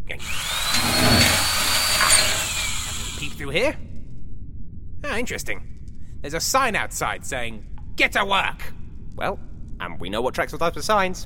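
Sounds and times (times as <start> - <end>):
power drill boring through a locked door: 0.2 - 3.4
speech: 3.5 - 3.9, 5.2 - 11.2.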